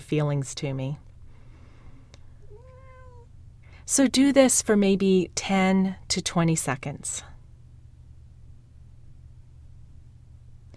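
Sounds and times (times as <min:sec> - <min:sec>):
speech: 0:00.1 - 0:01.1, 0:03.9 - 0:07.3
domestic cat meowing: 0:02.4 - 0:03.3.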